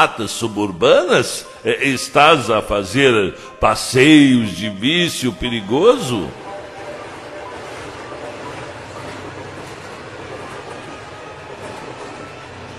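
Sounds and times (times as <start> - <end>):
speech: 0.0 - 6.4
suburban train wheels rolling on rails: 4.1 - 12.7
rainstorm: 6.3 - 12.7.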